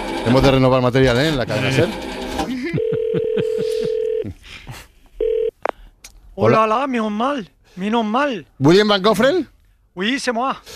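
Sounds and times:
speech: 0.2 - 2.6, 3.4 - 4.8, 6.4 - 10.7
laughter: 2.4 - 4.9
brief burst of another telephone tone: 2.8 - 4.2
steady telephone tone: 2.8 - 4.2, 5.2 - 5.6.

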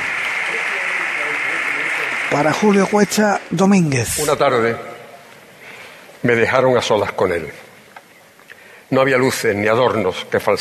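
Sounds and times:
large audience applauding in strong ovation after a speech: 0.0 - 3.8
speech: 2.3 - 4.9, 6.2 - 7.6, 8.9 - 10.5.

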